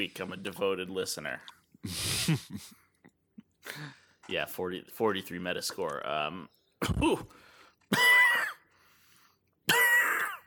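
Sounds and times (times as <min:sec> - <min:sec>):
speech: 0:00.0 - 0:02.8, 0:03.7 - 0:08.1
harsh coughing and throat clearing: 0:06.8 - 0:07.3, 0:07.9 - 0:08.7, 0:09.6 - 0:10.4.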